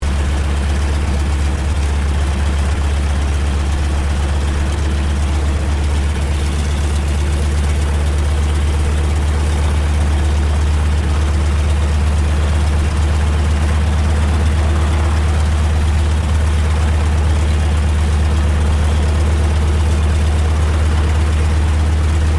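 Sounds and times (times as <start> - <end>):
1939 Boeing PT-17 Stearman trainer aircraft engine idling: 0.0 - 22.3.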